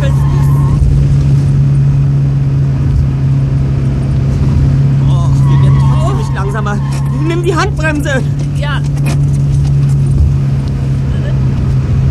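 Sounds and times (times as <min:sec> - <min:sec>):
car engine droning during engine braking while downshifting: 0:00.0 - 0:12.0
voices: 0:05.0 - 0:08.9
speech: 0:07.6 - 0:09.0.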